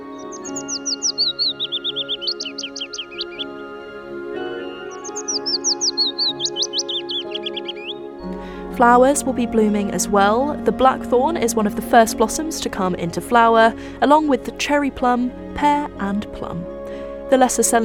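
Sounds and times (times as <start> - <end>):
willow warbler singing in dawn chorus: 0.0 - 14.2
speech: 8.8 - 16.7, 17.3 - 17.8.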